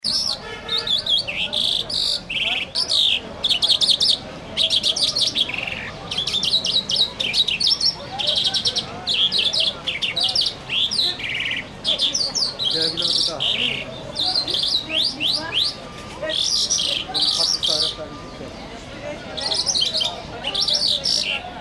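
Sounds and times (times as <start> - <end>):
birds in Kashgar: 0.0 - 21.5.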